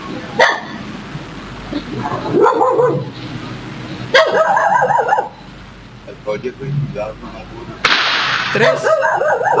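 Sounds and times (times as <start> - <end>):
several agitated dogs barking and yapping: 0.3 - 0.8, 2.0 - 3.2, 4.1 - 5.4, 8.5 - 9.5
speech: 6.3 - 7.9, 8.5 - 9.5.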